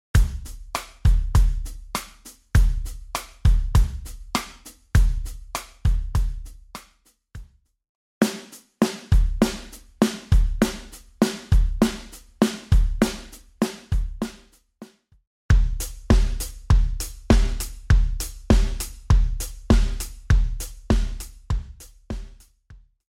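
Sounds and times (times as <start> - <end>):
drumbeats: 0.2 - 6.8, 8.2 - 14.5, 15.5 - 22.5.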